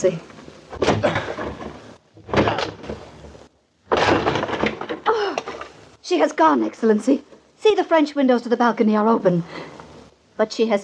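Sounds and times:
speech: 0:00.0 - 0:01.3, 0:06.1 - 0:09.8, 0:10.4 - 0:10.8
rattling splintering rumble of a wooden door: 0:00.5 - 0:06.0
heavy crashes against a wooden door being broken down: 0:00.7 - 0:05.9.

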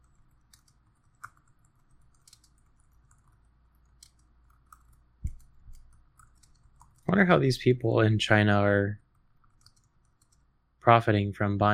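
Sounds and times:
faint typing on a computer keyboard: 0:00.0 - 0:07.2, 0:09.0 - 0:10.5
speech: 0:07.1 - 0:09.0, 0:10.8 - 0:11.7.

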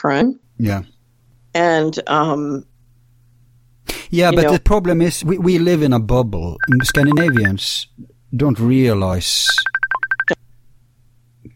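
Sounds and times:
speech: 0:00.0 - 0:02.7, 0:04.1 - 0:09.7
faint steady low hum: 0:00.0 - 0:11.5
short electronic phone tones: 0:06.6 - 0:07.6, 0:09.5 - 0:10.4.

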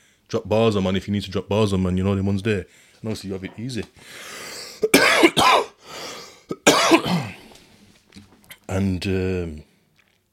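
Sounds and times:
speech: 0:00.3 - 0:05.4, 0:08.7 - 0:09.7
harsh raspy coughing fit: 0:04.5 - 0:07.5.

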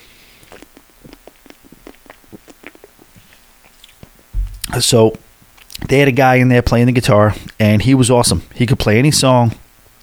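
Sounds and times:
person sipping and swallowing a drink: 0:00.0 - 0:06.1, 0:07.3 - 0:07.6
low thump: 0:04.4 - 0:04.8
speech: 0:04.7 - 0:05.2, 0:05.9 - 0:09.6.

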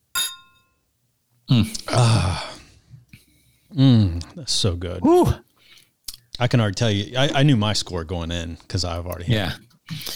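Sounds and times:
two beer glasses clinking in a toast: 0:00.0 - 0:00.8
speech: 0:01.5 - 0:01.8, 0:03.8 - 0:05.4, 0:06.4 - 0:10.1.

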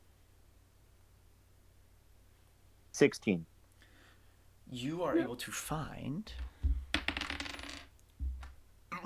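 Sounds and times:
speech: 0:03.0 - 0:03.5, 0:04.7 - 0:06.5
dice rolling on a hard tabletop for an investigation roll: 0:06.4 - 0:08.6.

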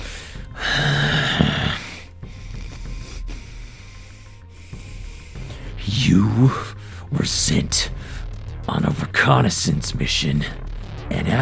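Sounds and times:
man breathing heavily on a phone line: 0:00.0 - 0:07.1, 0:07.9 - 0:08.6
speech: 0:09.3 - 0:11.4.

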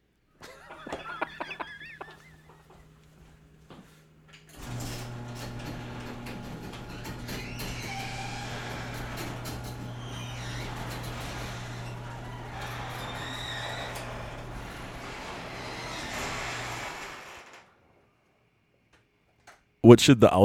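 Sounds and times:
laughter: 0:00.4 - 0:02.8
motorized garage door rumbling open: 0:04.5 - 0:18.0
speech: 0:19.9 - 0:20.4.

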